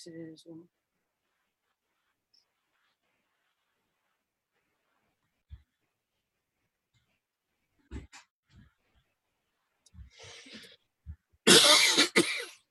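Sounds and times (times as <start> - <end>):
speech: 0.0 - 0.9
person coughing: 11.5 - 12.6.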